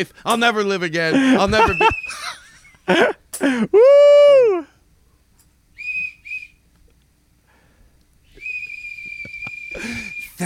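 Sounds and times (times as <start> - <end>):
speech: 0.0 - 4.7
laughter: 1.1 - 3.2
handheld whistle blasts: 5.7 - 6.7, 8.2 - 10.4.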